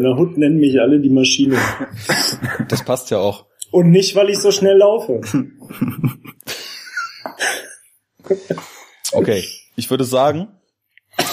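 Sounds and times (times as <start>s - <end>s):
speech: 0.0s - 6.7s, 8.2s - 10.6s
laughter: 1.4s - 3.1s, 5.2s - 8.8s
loud throat-clearing cough with rough hacks: 1.5s - 2.7s, 11.1s - 11.3s.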